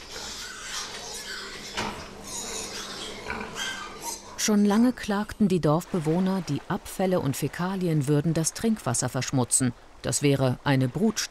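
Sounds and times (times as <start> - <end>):
many pigs grunting and squealing at a pig-fattening farm: 0.0 - 4.4
speech: 4.4 - 11.2.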